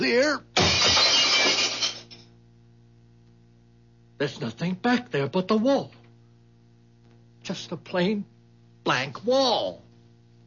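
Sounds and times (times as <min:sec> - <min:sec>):
speech: 0:00.0 - 0:00.5, 0:04.2 - 0:06.0, 0:07.5 - 0:09.8
glass smashed with a gun butt: 0:00.6 - 0:02.3
shards of broken glass rattling: 0:00.6 - 0:02.3.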